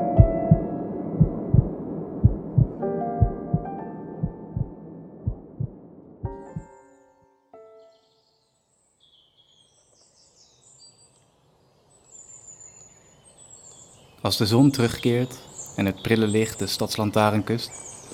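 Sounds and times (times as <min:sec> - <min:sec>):
heartbeat: 0:00.2 - 0:06.7
faint birdsong: 0:06.3 - 0:18.1
speech: 0:14.3 - 0:17.9.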